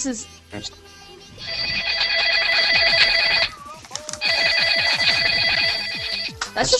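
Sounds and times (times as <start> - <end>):
speech: 0.0 - 1.8, 6.6 - 6.7
classic telephone bell ringtone: 1.4 - 3.6, 4.2 - 6.4.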